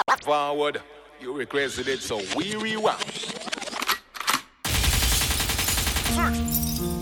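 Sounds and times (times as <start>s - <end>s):
speech: 0.2s - 3.3s, 6.2s - 6.6s
machine-gun-style gunfire sound effect: 4.7s - 6.4s.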